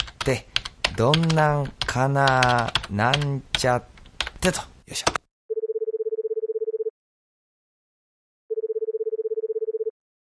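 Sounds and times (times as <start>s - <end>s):
speech: 0.2s - 5.2s
telephone line tone: 5.5s - 6.9s, 8.5s - 10.0s.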